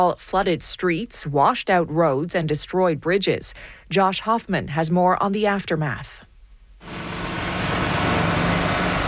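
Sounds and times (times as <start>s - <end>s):
speech: 0.0s - 7.0s
heavy machinery engines rumbling, bulldozers and dump trucks working on roads: 6.8s - 9.0s.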